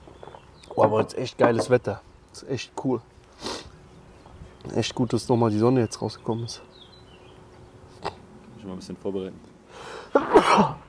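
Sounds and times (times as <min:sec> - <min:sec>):
speech: 0:00.8 - 0:03.1, 0:04.7 - 0:06.8, 0:08.6 - 0:10.8
person sneezing: 0:10.0 - 0:10.8.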